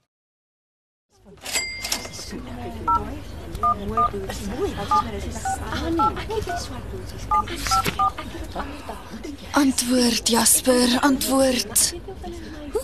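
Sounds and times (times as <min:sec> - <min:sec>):
speech: 0:01.2 - 0:01.5, 0:02.3 - 0:12.8
telephone dialled with touch-tone keys: 0:07.3 - 0:08.2.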